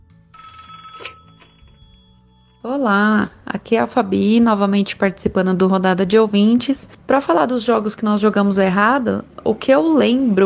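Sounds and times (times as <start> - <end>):
telephone ringing for an incoming call: 0.4 - 2.7
speech: 2.6 - 10.4.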